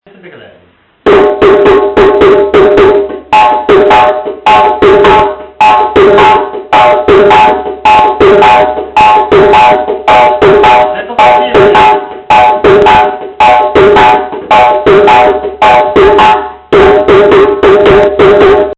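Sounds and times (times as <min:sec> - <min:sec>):
rhythm: 0:01.0 - 0:18.7.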